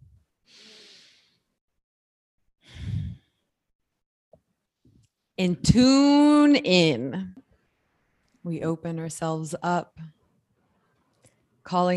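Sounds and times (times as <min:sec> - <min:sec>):
deep breath taken during a group breathing exercise: 0:00.5 - 0:01.5, 0:02.6 - 0:03.4
speech: 0:05.4 - 0:07.4, 0:08.4 - 0:10.2, 0:11.7 - 0:11.9.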